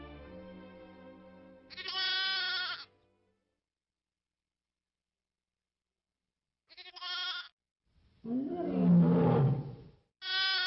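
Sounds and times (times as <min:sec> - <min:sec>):
lamb or sheep bleating: 0:01.7 - 0:02.9, 0:06.7 - 0:07.5, 0:10.2 - 0:10.6
speech: 0:08.2 - 0:09.1
lion roaring: 0:08.2 - 0:09.9.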